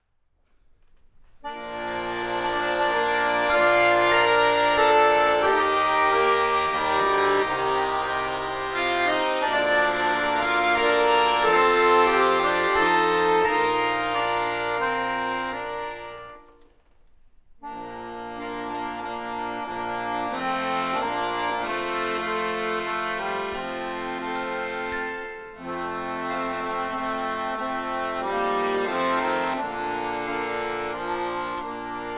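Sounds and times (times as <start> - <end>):
accordion ensemble playing a prelude: 1.4 - 16.7, 17.6 - 32.1.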